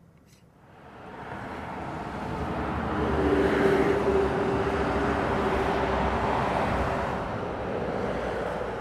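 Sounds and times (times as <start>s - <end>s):
motorway traffic roaring past a highway bridge: 0.0s - 8.7s
passing vehicles whooshing: 0.6s - 8.7s.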